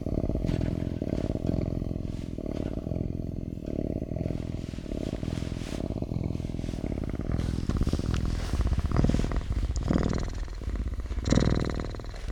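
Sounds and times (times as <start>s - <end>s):
cougar cub purring: 0.0s - 12.2s.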